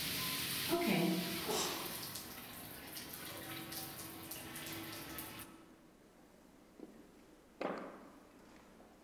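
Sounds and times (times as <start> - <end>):
shower water running: 0.0 - 5.5.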